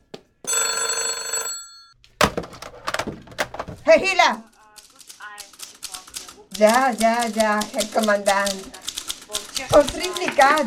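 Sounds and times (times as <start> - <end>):
telephone bell ringing: 0.4 - 2.0
knocks and clattering thuds: 2.2 - 3.9
speech: 3.9 - 4.5, 6.6 - 8.8, 9.6 - 10.6.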